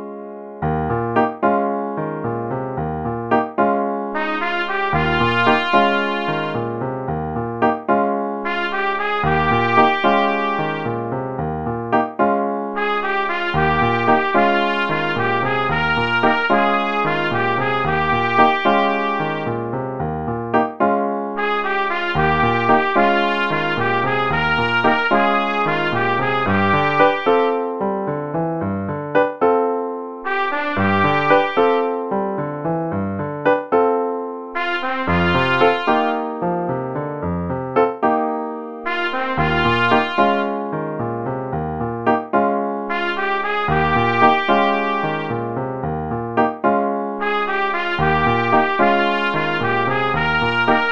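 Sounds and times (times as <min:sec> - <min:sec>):
trumpet: 0:00.7 - 0:38.2, 0:38.8 - 0:50.9.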